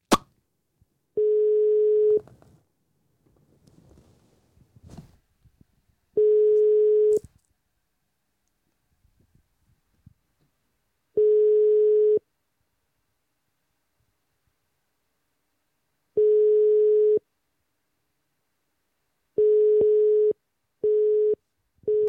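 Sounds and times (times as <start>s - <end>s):
busy signal beeps: 1.2s - 2.2s, 6.2s - 7.2s, 19.4s - 22.0s
telephone ringback tone on an outgoing call: 1.2s - 2.2s, 6.2s - 7.2s, 11.2s - 12.2s, 16.2s - 17.2s, 19.4s - 22.0s.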